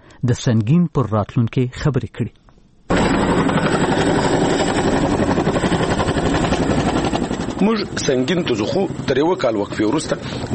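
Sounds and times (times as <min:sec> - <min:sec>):
speech: 0:00.2 - 0:03.6, 0:07.6 - 0:10.5
American Chinook helicopter in flight heading to a district in northern Helmand: 0:02.9 - 0:10.5.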